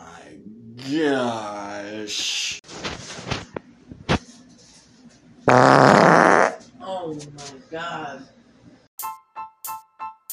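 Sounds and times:
speech: 0.8 - 2.6
dog farting: 5.5 - 6.6.

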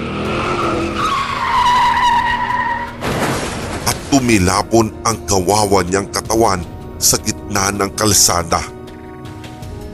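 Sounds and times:
speeding car skidding with screeching tires: 0.0 - 3.8
speech: 4.1 - 8.7.

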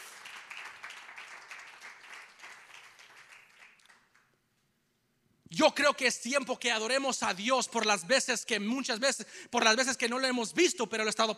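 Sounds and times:
church audience applauding: 0.0 - 4.3
speech: 5.6 - 11.3.

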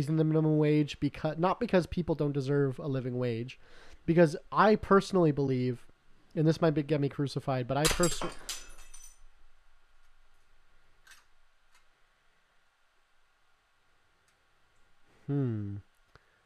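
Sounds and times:
speech: 0.0 - 8.5
wine glass shattering in a person's hand: 7.8 - 9.3.

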